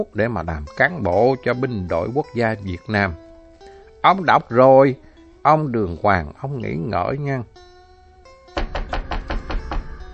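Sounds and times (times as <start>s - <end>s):
speech: 0.0s - 3.2s, 4.0s - 7.7s
firm knocking on a door from outside: 8.6s - 10.1s.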